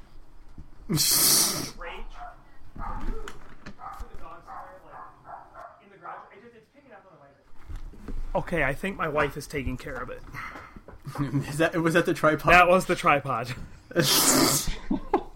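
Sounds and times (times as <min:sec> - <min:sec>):
speech: 0:00.9 - 0:01.4, 0:08.4 - 0:14.7
dog barking: 0:02.0 - 0:06.4.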